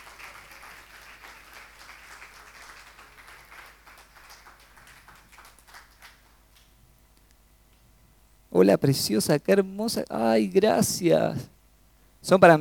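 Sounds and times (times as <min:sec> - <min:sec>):
audience applauding at a ceremony: 0:00.0 - 0:06.7
speech: 0:08.6 - 0:11.6, 0:12.2 - 0:12.5.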